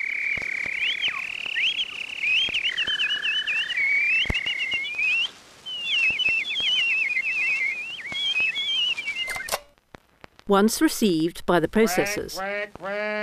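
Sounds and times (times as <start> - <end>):
rapid chirping trills: 0.0 - 9.5
steady high whistling tone warbling and bending: 0.0 - 9.6
speech: 10.5 - 13.2.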